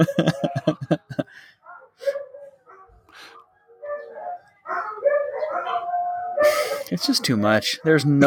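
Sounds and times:
speech: 0.0s - 0.4s, 6.9s - 8.2s
laughter: 0.0s - 1.4s
dogs barking: 1.6s - 8.2s.

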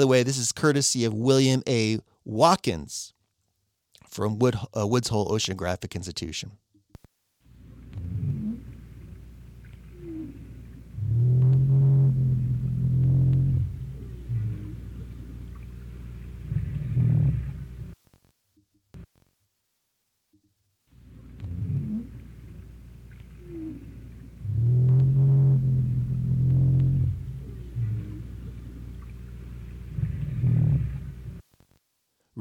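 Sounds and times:
speech: 0.0s - 3.2s, 4.1s - 6.6s
faint watery hiss: 7.4s - 18.0s, 20.9s - 31.4s
North Atlantic right whale groaning underwater calls: 7.6s - 18.0s, 21.1s - 31.4s.

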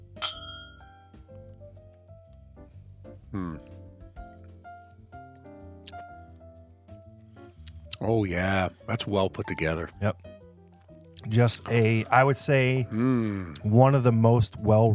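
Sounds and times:
glasses of bourbon clinking in a toast: 0.2s - 0.9s
speech: 3.3s - 3.7s, 8.0s - 10.2s, 11.3s - 14.9s.

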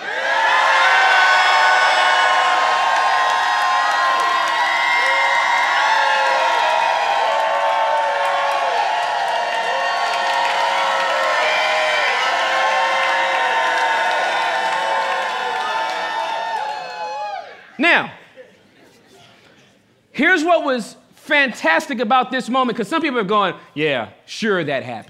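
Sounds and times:
scattered whoops from the crowd: 0.0s - 17.7s
large crowd shouting and cheering: 0.0s - 18.4s
speech: 20.6s - 25.0s.

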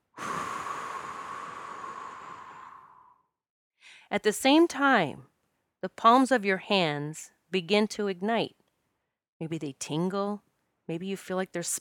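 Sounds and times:
person inhaling deeply through nose then blowing out: 0.0s - 4.1s
speech: 4.1s - 8.6s, 9.4s - 11.7s.

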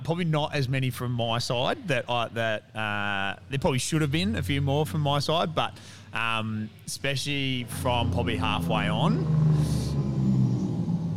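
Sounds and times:
speech: 0.1s - 9.8s
small truck rolling past with low engine rumble: 7.6s - 11.1s.

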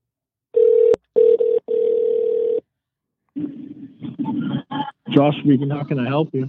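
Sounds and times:
telephone ringback tone during an outgoing call to a cell phone: 0.6s - 2.6s
speech: 5.1s - 6.4s.

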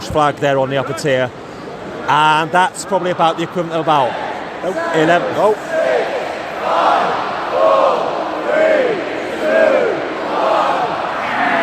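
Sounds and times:
speech: 0.1s - 1.4s, 2.1s - 5.6s
large stadium crowd roaring and cheering: 3.2s - 11.6s.

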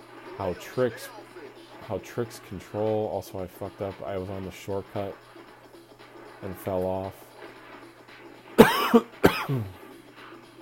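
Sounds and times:
speech: 0.4s - 1.2s, 1.9s - 5.4s, 6.4s - 7.2s, 8.9s - 9.8s
person with seasonal allergies coughing: 8.6s - 9.8s.

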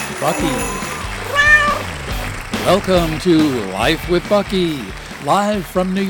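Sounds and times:
speech: 0.2s - 1.4s, 2.6s - 6.0s
cat meowing: 1.2s - 3.2s.

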